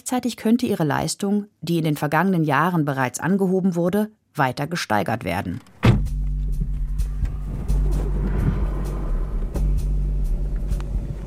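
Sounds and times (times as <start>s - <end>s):
speech: 0.0s - 5.7s
car engine and tyre rumble driving toward a nuclear power plant: 5.8s - 11.2s.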